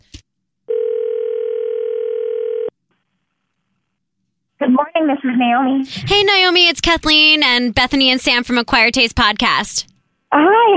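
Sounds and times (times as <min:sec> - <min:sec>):
electronic ringback tone of a phone call: 0:00.7 - 0:02.7
speech: 0:05.0 - 0:10.7.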